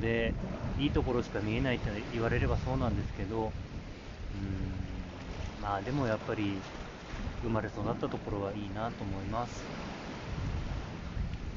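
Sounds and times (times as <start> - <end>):
speech: 0.0 - 4.8, 5.6 - 9.8
sea waves washing on the shore: 0.0 - 11.5.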